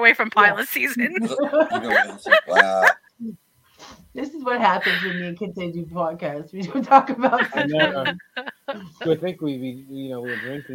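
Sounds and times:
speech: 0:00.0 - 0:10.7
laughter: 0:01.0 - 0:03.0, 0:06.6 - 0:10.7
person imitating a dog with yelping bark-like vocal bursts: 0:01.2 - 0:03.0.

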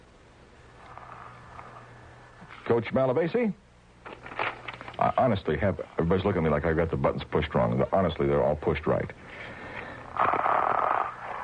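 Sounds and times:
raspy snore-like buzzing rumble over phone line: 0:00.6 - 0:02.4, 0:09.8 - 0:11.4
speech: 0:02.7 - 0:03.6, 0:05.0 - 0:09.6.

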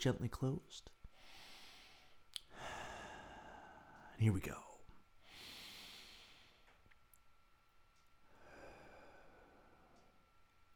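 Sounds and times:
speech: 0:00.0 - 0:01.0, 0:04.2 - 0:04.7
deep breath in through nose and out through mouth: 0:01.1 - 0:04.2, 0:05.2 - 0:06.8, 0:08.2 - 0:10.2.

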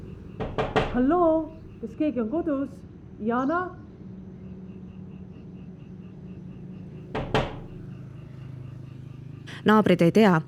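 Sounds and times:
low steady hum: 0:00.0 - 0:02.1
neighbours knocking on windows and doors of a wooden house: 0:00.3 - 0:01.8, 0:07.1 - 0:07.8
speech: 0:01.0 - 0:03.8, 0:09.6 - 0:10.4.

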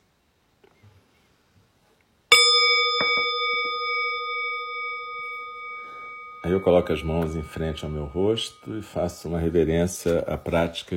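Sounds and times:
meditation bell struck and ringing: 0:02.3 - 0:09.7
speech: 0:06.4 - 0:10.9.

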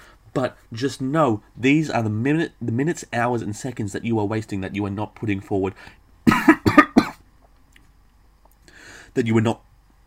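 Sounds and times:
speech: 0:00.4 - 0:06.6, 0:09.2 - 0:09.7
harsh coughs: 0:06.3 - 0:07.2.

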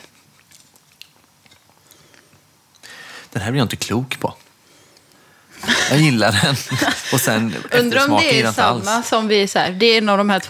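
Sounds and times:
crunchy biting and chewing while taste-testing food: 0:00.0 - 0:02.8
speech: 0:03.3 - 0:04.4, 0:05.9 - 0:10.4
laughter: 0:05.6 - 0:09.0.

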